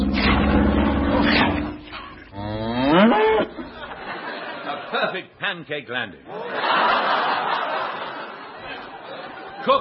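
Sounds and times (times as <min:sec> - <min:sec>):
cows mooing: 0:00.0 - 0:03.9
laughter: 0:03.6 - 0:05.2, 0:06.3 - 0:09.7
speech: 0:05.1 - 0:07.7.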